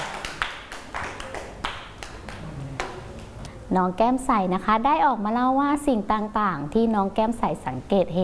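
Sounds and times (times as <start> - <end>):
group of children clapping hands: 0.0 - 3.3
speech: 3.7 - 8.2.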